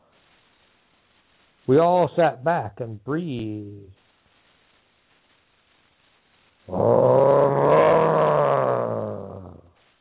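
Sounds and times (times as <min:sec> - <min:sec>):
speech: 0:01.7 - 0:04.0
low rumbling animal growl in the woods: 0:06.7 - 0:09.7.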